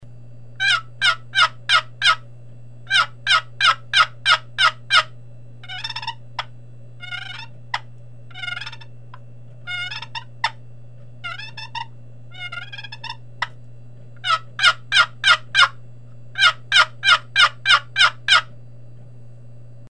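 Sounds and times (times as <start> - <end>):
box call imitating dual hen turkey calls: 0.6 - 2.2, 2.9 - 6.2, 7.0 - 8.9, 9.7 - 10.6, 11.2 - 13.5, 14.2 - 15.8, 16.4 - 18.5.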